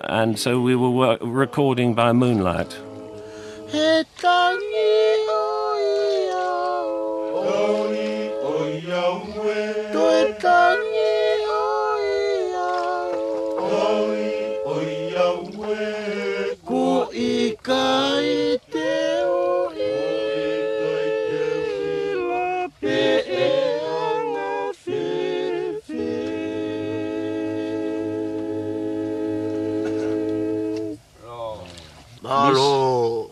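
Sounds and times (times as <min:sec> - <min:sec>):
speech: 0:00.0 - 0:02.9, 0:03.7 - 0:05.6
group of villagers singing a love song in harmony: 0:00.6 - 0:31.2.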